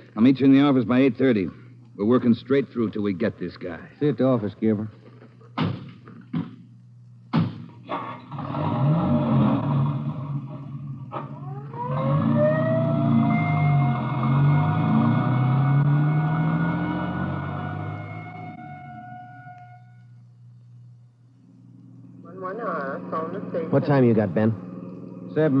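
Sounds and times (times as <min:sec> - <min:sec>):
speech: 0:00.2 - 0:05.0, 0:23.8 - 0:24.6, 0:25.4 - 0:25.5
door slams: 0:05.6 - 0:06.5
vehicle engine rumbling to life: 0:07.9 - 0:25.5
ambulance siren wailing as the vehicle pulls away: 0:11.2 - 0:20.0.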